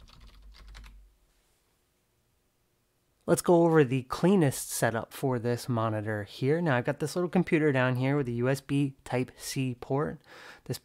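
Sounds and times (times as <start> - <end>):
typing on a keyboard of a keyboard-and-mouse combo to log in: 0.0 - 1.0
speech: 3.3 - 10.8.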